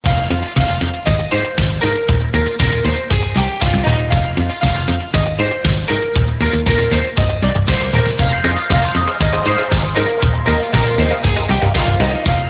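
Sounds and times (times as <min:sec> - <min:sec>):
instrumental disco ringtone: 0:00.1 - 0:12.4.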